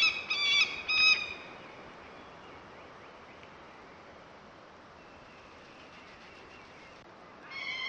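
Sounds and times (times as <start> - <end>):
peregrine falcon harsh harmonic calls: 0.0 - 1.4.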